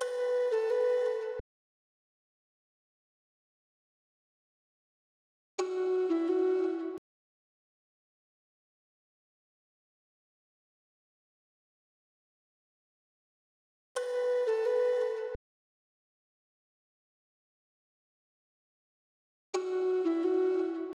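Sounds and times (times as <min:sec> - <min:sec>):
B minor RnB flute melody loop: 0:00.0 - 0:01.4, 0:05.6 - 0:07.0, 0:14.0 - 0:15.4, 0:19.6 - 0:20.9.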